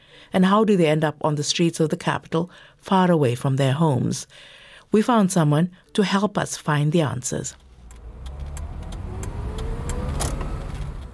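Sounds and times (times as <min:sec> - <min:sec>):
speech: 0:00.3 - 0:07.6
car engine rumbling while slowing at a petrol station: 0:07.6 - 0:11.1.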